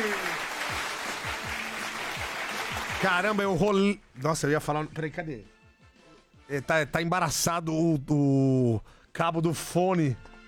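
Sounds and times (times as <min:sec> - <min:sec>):
crowd applause: 0:00.0 - 0:03.6
speech: 0:03.0 - 0:05.6, 0:06.5 - 0:10.3.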